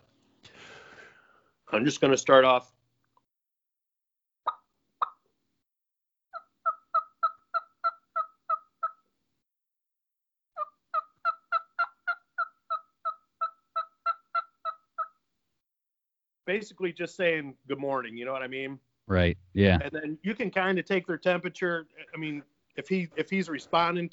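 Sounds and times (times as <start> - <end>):
speech: 1.7 - 2.8, 16.6 - 24.1
turkey call clucks and soft yelps: 6.4 - 9.0, 10.6 - 15.2.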